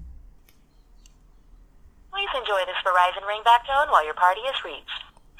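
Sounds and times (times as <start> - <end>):
thin phone-filtered voice: 2.2 - 5.1.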